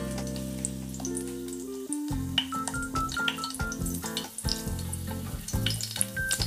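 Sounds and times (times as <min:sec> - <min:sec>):
steady melody: 0:00.0 - 0:04.2
tube garlic paste frying in hot oil: 0:00.0 - 0:06.4.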